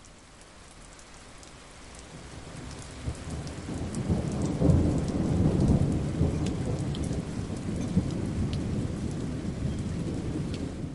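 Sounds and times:
steady rain hissing and pattering in a thunderstorm: 0.0s - 10.9s
deep rolling thunder rumbling low: 2.6s - 10.9s.

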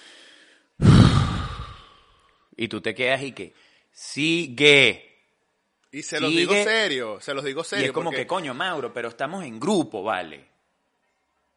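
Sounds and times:
person imitating heavy exhausted breathing: 0.8s - 2.1s
speech: 2.6s - 5.1s, 5.9s - 10.5s.

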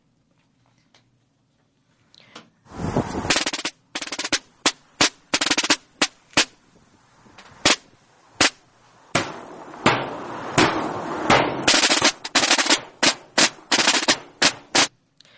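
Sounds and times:
Holy Week procession band drums: 3.3s - 6.5s, 7.3s - 14.9s.

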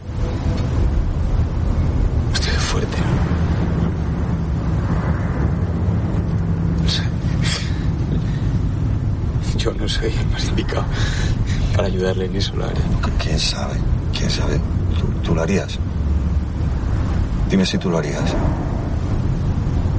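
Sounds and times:
hearse driving slowly along a road heard from inside: 0.0s - 19.9s
speech: 10.0s - 11.2s, 11.8s - 15.9s, 17.5s - 18.6s.

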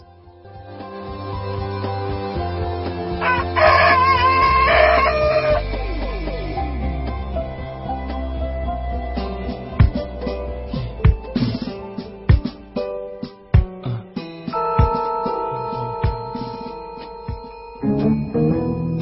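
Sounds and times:
steady musical backing: 0.0s - 19.0s
rooster crowing: 3.2s - 5.6s.

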